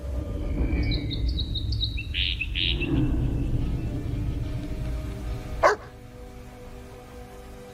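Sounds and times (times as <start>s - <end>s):
steady low rumble: 0.0s - 7.7s
small bird chirping and singing: 0.2s - 4.1s.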